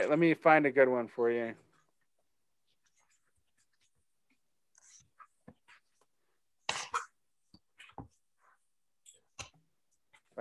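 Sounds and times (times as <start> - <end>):
speech: 0.0 - 1.6
person coughing: 6.7 - 7.2.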